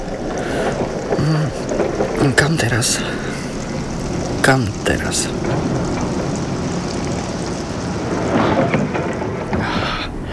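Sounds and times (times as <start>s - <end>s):
low hum: 0.0s - 10.3s
steady rain outdoors: 0.0s - 10.3s
speech: 2.2s - 3.5s, 4.4s - 5.9s.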